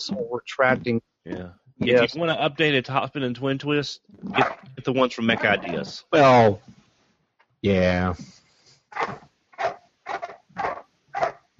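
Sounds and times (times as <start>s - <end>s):
speech: 0.0s - 6.8s, 7.6s - 10.7s
dog barking excitedly: 4.4s - 4.6s, 9.0s - 11.4s.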